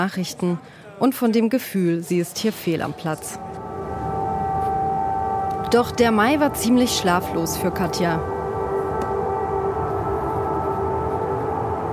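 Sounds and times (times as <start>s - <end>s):
speech: 0.0s - 3.5s, 5.7s - 8.4s
wash of broadband noise: 2.4s - 11.9s
air-raid siren sounding at night in Kyiv: 2.8s - 11.9s.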